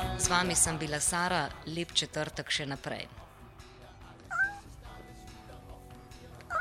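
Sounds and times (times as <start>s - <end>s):
speech: 0.4s - 3.2s
cat meowing in a studio: 4.3s - 4.7s.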